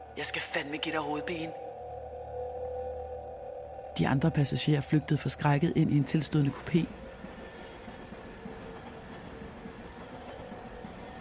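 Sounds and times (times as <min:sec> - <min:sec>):
commuter train rolling along the rails: 0:00.0 - 0:11.1
speech: 0:00.2 - 0:01.7, 0:04.0 - 0:07.0
faint rhythmic clickety-clack of train on rails: 0:05.8 - 0:11.1.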